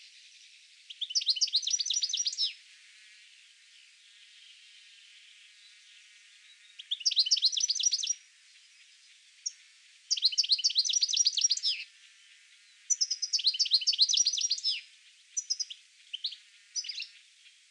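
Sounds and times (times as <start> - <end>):
European goldfinch (Carduelis carduelis) calling with tinkling twittering notes: 0.9 - 2.6, 5.7 - 11.9, 12.6 - 17.2.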